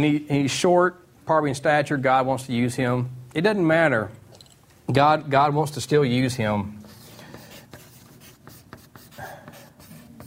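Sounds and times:
speech: 0:00.0 - 0:04.2, 0:04.9 - 0:06.8
pen scratching across paper while writing by hand: 0:06.8 - 0:10.2.

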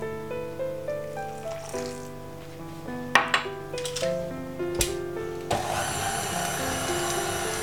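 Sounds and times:
music: 0:00.0 - 0:07.6
water poured into a bowl of flour and butter: 0:01.3 - 0:02.1.

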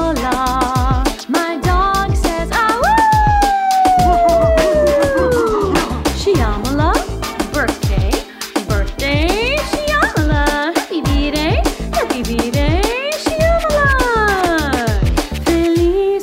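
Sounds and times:
celebration song with a steady driving beat: 0:00.0 - 0:16.1
dog howling: 0:02.8 - 0:06.1.

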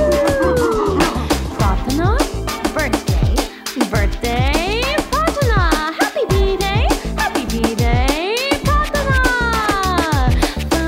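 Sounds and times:
dog howling in long sliding tones: 0:00.0 - 0:01.1
steady rhythmic musical beat: 0:00.0 - 0:10.8.

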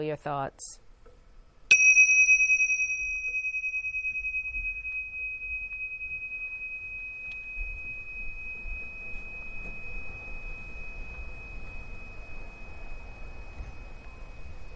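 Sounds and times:
speech: 0:00.0 - 0:00.8
meditation bell ringing with a bright clear tone: 0:01.7 - 0:14.7.

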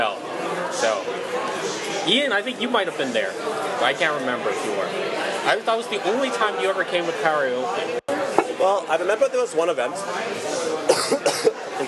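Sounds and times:
low murmur: 0:00.0 - 0:11.8
speech: 0:02.1 - 0:08.0, 0:08.6 - 0:11.8
harsh coughs: 0:10.8 - 0:11.7.

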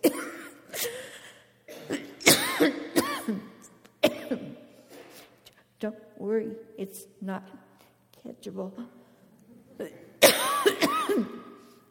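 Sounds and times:
person coughing with rough throaty hacks: 0:00.0 - 0:04.7, 0:10.2 - 0:11.6
speech: 0:05.8 - 0:09.0, 0:09.8 - 0:10.1.

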